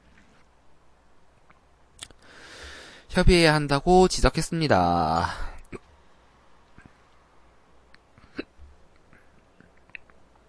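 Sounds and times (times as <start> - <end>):
speech: 3.2 - 5.5
sharp brief hiccups: 8.2 - 8.6.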